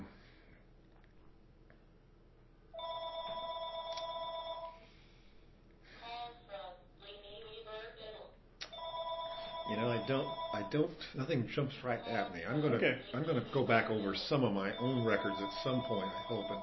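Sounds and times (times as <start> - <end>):
telephone ringing: 2.8 - 4.8, 8.7 - 10.9, 13.4 - 16.6
speech: 10.1 - 16.6.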